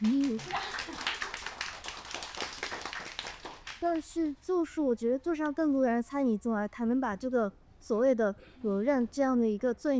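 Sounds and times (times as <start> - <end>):
several people applauding with hand clapping: 0.0 - 4.2
speech: 3.8 - 9.9.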